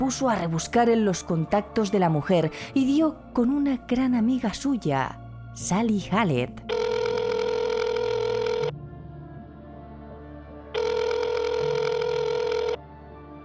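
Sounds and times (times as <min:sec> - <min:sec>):
speech: 0:00.0 - 0:06.8
telephone ringing with an electronic bell: 0:06.7 - 0:08.7, 0:10.8 - 0:12.8.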